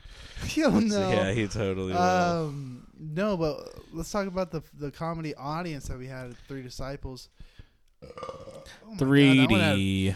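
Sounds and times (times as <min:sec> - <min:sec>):
speech: 0:00.5 - 0:10.1
loud drawn-out belch: 0:08.0 - 0:08.8.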